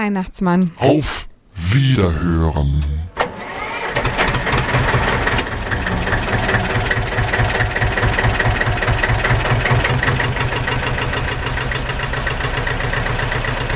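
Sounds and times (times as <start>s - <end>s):
speech: 0.0s - 3.1s
steel tractor engine cranking, idling and driving off: 3.1s - 13.7s.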